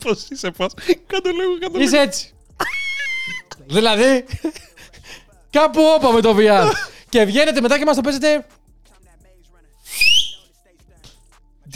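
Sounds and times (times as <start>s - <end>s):
speech: 0.0s - 2.4s, 3.6s - 4.7s, 5.5s - 8.6s
laughter: 0.0s - 7.9s
person whistling a single upward-sliding note: 9.9s - 10.5s.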